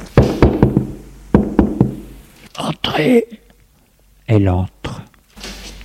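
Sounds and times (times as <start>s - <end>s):
knocking on a wooden door off a first-floor corridor: 0.2s - 2.0s
speech: 3.0s - 3.4s, 4.3s - 5.0s.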